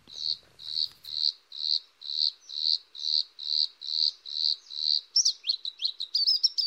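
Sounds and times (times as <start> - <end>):
bluethroat song in the mountains: 0.0 - 6.6.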